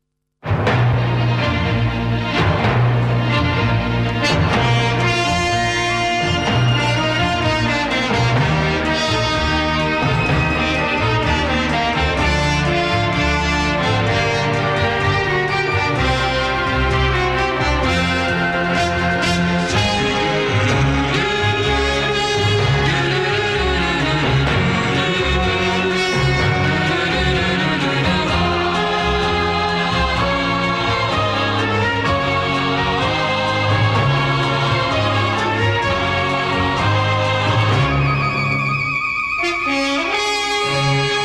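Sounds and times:
instrumental TV series opening theme tune: 0.4 - 41.2.

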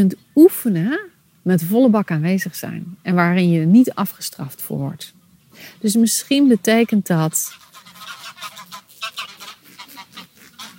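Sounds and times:
speech: 0.0 - 7.6
geese honking as they fly over: 6.0 - 10.7.

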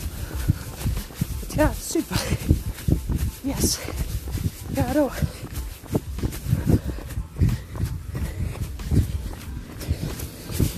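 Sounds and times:
running footsteps: 0.0 - 10.7
speech: 1.6 - 2.6, 3.4 - 4.1, 4.8 - 5.4.

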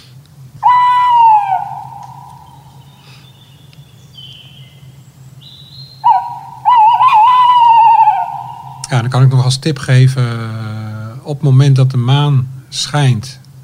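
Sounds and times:
low hum: 0.0 - 13.6
tawny owl hooting: 0.6 - 9.6
speech: 9.0 - 13.4.

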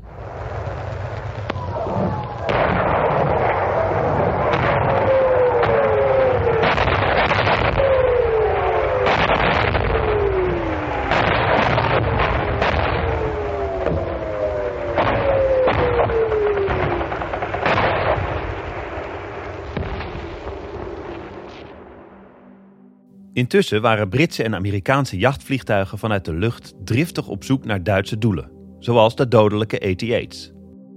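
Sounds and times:
screaming rockets from a rocket launcher barrage: 0.0 - 22.1
loud booming explosions and blasts: 0.0 - 22.6
speech: 23.4 - 30.5.

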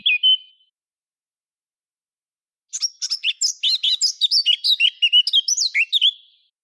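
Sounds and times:
Eurasian blackcap singing: 2.8 - 6.2.

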